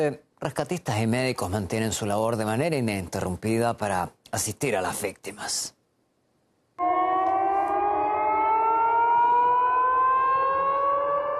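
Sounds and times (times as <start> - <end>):
speech: 0.0 - 5.8
air-raid siren wailing in Belgorod province, Russia, on the Ukrainian border: 6.8 - 11.3.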